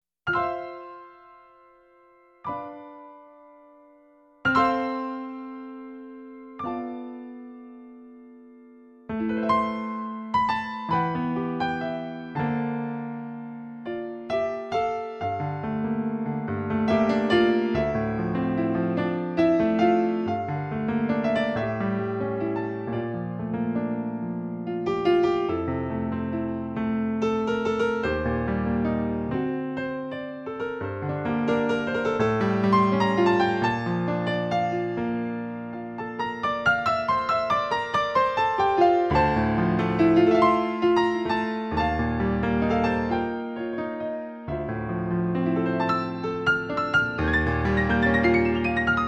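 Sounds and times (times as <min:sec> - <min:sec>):
new age music: 0:00.3 - 0:49.0.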